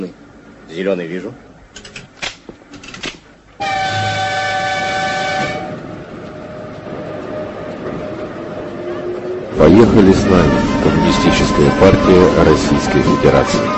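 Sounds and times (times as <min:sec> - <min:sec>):
speech: 0:00.0 - 0:01.5, 0:09.6 - 0:13.7
express passenger train rumbling as it departs: 0:00.0 - 0:13.7
sharp clanks of an express passenger train: 0:01.7 - 0:03.3
express passenger train horn blast: 0:03.6 - 0:05.9, 0:09.9 - 0:13.7.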